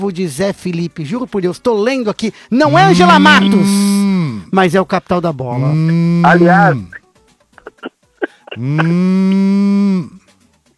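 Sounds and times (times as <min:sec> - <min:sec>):
speech: 0:00.0 - 0:07.0, 0:08.6 - 0:10.2
cow mooing: 0:02.7 - 0:04.5, 0:05.6 - 0:06.9, 0:08.6 - 0:10.2.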